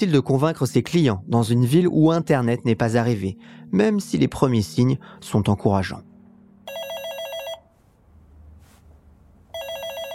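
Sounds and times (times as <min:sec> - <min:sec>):
speech: 0:00.0 - 0:06.1
telephone ringing with an electronic trill: 0:06.7 - 0:07.7, 0:09.5 - 0:10.1.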